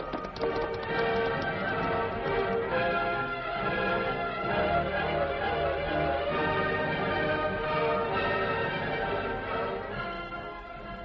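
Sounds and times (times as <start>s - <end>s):
horse hooves clip-clopping as riders set off: 0.0s - 3.1s
loud sustained musical backdrop: 0.0s - 11.0s.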